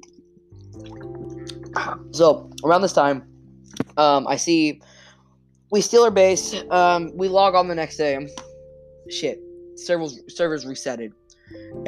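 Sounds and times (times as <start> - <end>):
wet sipping and swallowing of water with slurping and gulping: 0.6 - 2.1
speech: 0.8 - 1.2, 1.8 - 3.3, 4.0 - 4.9, 5.7 - 11.8.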